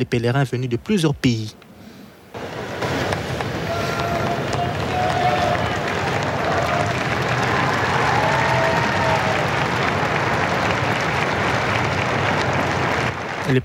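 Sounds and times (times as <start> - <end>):
speech: 0.0 - 1.6
large outdoor crowd clapping and cheering in a square: 2.4 - 13.6
people shouting in a crowd: 3.5 - 9.6.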